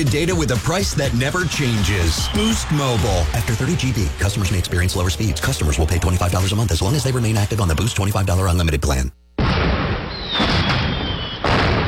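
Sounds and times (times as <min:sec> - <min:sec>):
speech: 0:00.0 - 0:09.2
bottle rocket firework whistle at a Fourth of July celebration: 0:01.6 - 0:03.0, 0:10.1 - 0:11.5.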